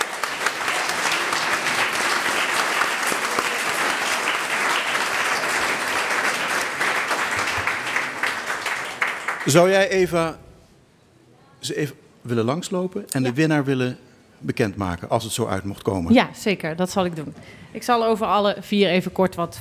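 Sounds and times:
large audience applauding: 0.0s - 10.0s
speech: 9.5s - 10.4s, 11.7s - 19.5s.

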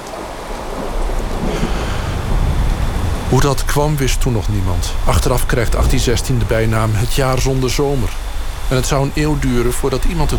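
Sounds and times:
steady heavy rain in the Alps: 0.0s - 10.3s
deep rolling thunder rumble in the Alps: 0.2s - 7.4s, 10.0s - 10.3s
speech: 3.3s - 10.3s.

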